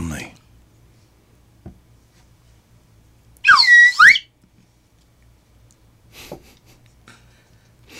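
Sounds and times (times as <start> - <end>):
slide whistle riff: 3.4 - 4.3.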